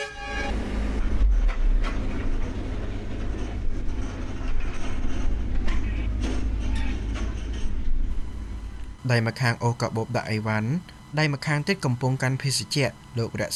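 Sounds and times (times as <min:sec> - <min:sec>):
train rumbling at the station serving Phnom Penh International Airport: 0:00.0 - 0:08.8
train clanks and clicks: 0:01.3 - 0:08.0
speech: 0:09.1 - 0:13.5.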